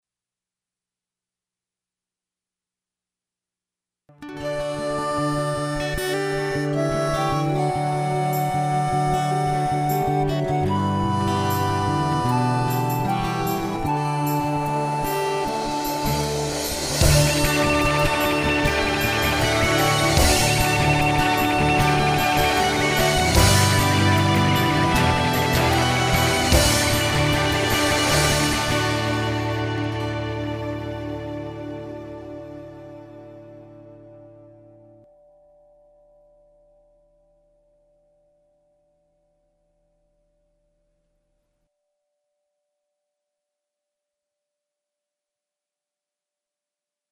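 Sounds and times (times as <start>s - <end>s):
guitar: 4.1s - 37.3s
harmonica: 4.2s - 33.4s.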